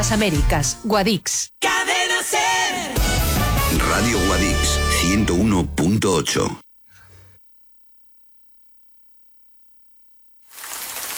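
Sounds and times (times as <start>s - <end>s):
speech: 0.0s - 6.6s
steady hissing rainfall: 10.5s - 11.1s.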